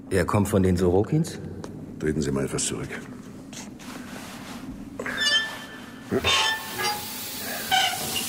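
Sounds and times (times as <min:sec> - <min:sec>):
speech: 0:00.1 - 0:03.7, 0:06.1 - 0:06.4
undiluted nitric acid hissing and fizzing with high-pitched whine: 0:06.2 - 0:08.2.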